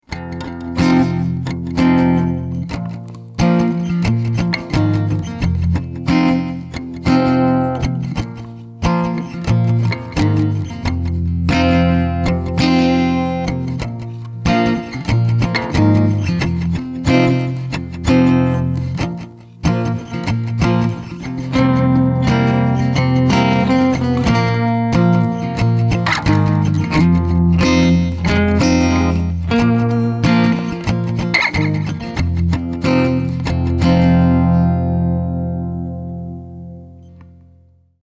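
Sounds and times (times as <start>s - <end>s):
country blues acoustic guitar: 0.0s - 37.7s.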